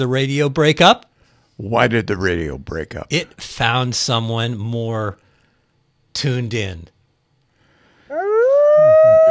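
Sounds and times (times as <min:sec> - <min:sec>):
speech: 0:00.0 - 0:05.2, 0:06.2 - 0:07.0
dog howling: 0:08.1 - 0:09.2
faint lower yelps or grunts: 0:08.1 - 0:09.2.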